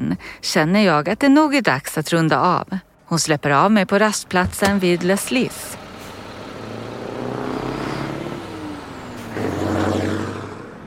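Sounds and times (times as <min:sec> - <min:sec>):
speech: 0:00.1 - 0:05.8
car and truck engines rumbling at a motorway rest area: 0:02.3 - 0:10.8.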